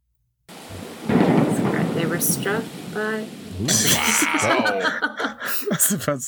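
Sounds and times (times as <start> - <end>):
thunder sound effect: 0.5 - 5.2
speech: 2.2 - 6.2
laughter: 3.6 - 6.2.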